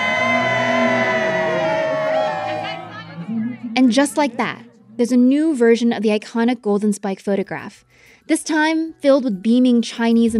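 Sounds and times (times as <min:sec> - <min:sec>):
big group of people shouting cheese in unison: 0:00.0 - 0:03.0
speech: 0:03.9 - 0:10.3.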